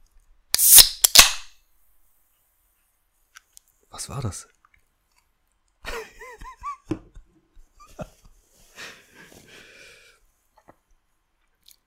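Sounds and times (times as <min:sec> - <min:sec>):
cold drink container popping open: 0:00.6 - 0:01.4
speech: 0:04.0 - 0:04.6.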